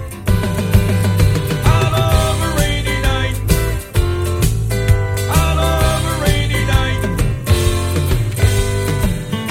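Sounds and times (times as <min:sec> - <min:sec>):
harmony: 0:00.2 - 0:09.4.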